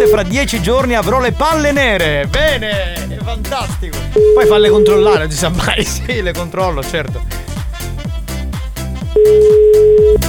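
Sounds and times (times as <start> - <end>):
rhythmic music: 0.0 - 10.2
speech: 0.1 - 7.5, 9.2 - 10.2
laughter: 2.0 - 7.2
telephone ringing tone on a call: 4.2 - 5.2, 9.2 - 10.2.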